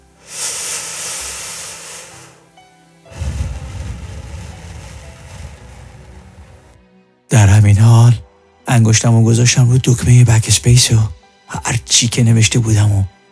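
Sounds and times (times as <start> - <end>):
breathy hiss of a cigarette being drawn on: 0.0 - 6.8
lighter lighting a cigarette: 0.2 - 2.5, 3.1 - 6.8
speech: 7.4 - 13.2.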